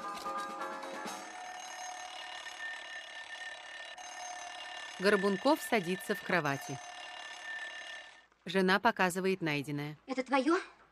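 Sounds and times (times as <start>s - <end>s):
wind-up alarm clock ringing with a metallic ring: 1.0s - 8.3s
speech: 5.0s - 6.9s, 8.5s - 10.7s.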